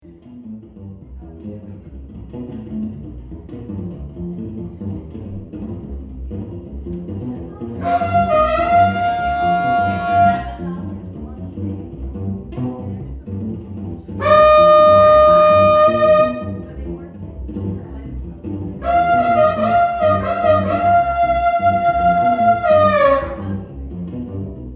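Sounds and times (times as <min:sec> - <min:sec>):
saxophone: 0:07.8 - 0:10.7, 0:14.2 - 0:16.7, 0:18.8 - 0:23.7.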